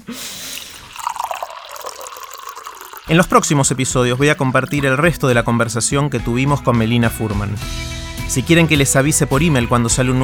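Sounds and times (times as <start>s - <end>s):
drinking water pouring into a glass: 0.0s - 5.3s
speech: 0.1s - 0.4s, 3.1s - 10.2s.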